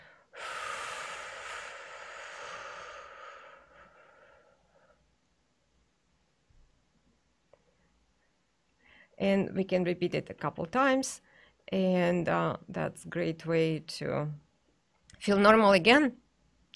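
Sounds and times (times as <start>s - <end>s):
slow exhale during a breathing exercise: 0.0s - 5.0s
speech: 9.2s - 14.4s, 15.2s - 16.2s.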